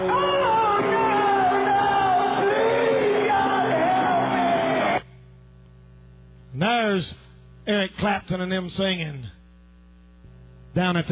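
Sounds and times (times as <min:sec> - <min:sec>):
loud drawn-out scream: 0:00.1 - 0:05.0
speech: 0:07.0 - 0:07.2, 0:07.8 - 0:09.4, 0:10.8 - 0:11.1.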